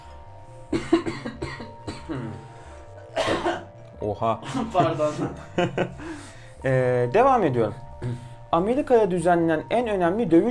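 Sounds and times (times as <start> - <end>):
person coughing and clearing throat: 0.7 - 3.7, 4.4 - 5.4
speech: 4.1 - 10.4
laughter: 4.4 - 6.0.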